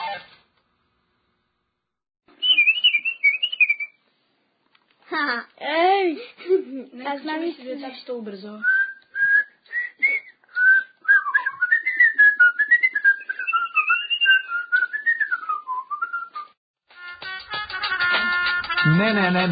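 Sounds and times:
person whistling a wavering melody: 2.4 - 3.9, 8.6 - 16.6
speech: 5.2 - 8.8, 18.9 - 19.5.

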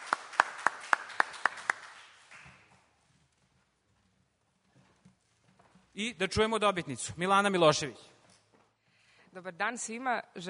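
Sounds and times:
sharp faint hand claps at an award ceremony: 0.0 - 2.8
speech: 6.0 - 8.1, 9.4 - 10.4.

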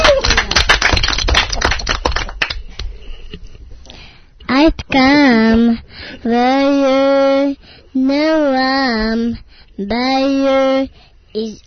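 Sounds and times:
hand clapping at a child's birthday celebration: 0.0 - 3.0
speech: 4.9 - 11.6.

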